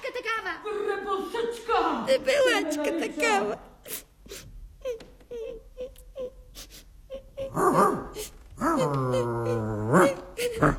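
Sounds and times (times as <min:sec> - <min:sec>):
speech: 0:00.4 - 0:03.6
person sobbing and wailing: 0:04.8 - 0:10.7.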